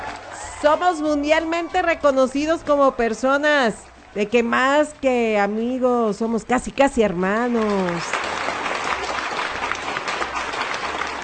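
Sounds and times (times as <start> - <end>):
crowd applauding: 0.0 - 2.0, 7.2 - 11.2
speech: 0.6 - 8.2.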